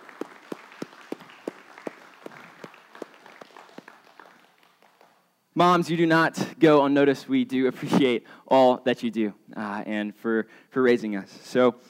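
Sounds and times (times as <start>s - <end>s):
one person clapping in a steady rhythm: 0.0s - 5.2s
audience applauding in church: 0.0s - 5.3s
speech: 5.6s - 11.8s.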